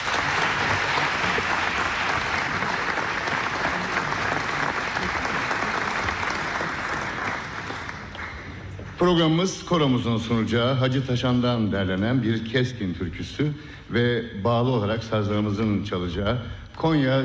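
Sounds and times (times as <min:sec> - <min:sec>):
audience applause at a folk music concert: 0:00.0 - 0:08.9
speech: 0:09.0 - 0:17.2.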